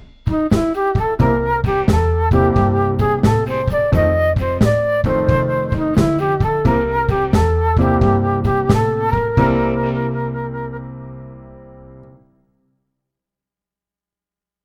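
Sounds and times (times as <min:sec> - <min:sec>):
flute playing blues riffs: 0:00.3 - 0:11.3.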